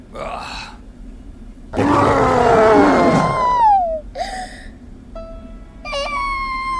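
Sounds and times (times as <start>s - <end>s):
deep growling monster roar performed by a voice: 1.8s - 3.7s
whimpering vocal sounds: 2.8s - 4.1s.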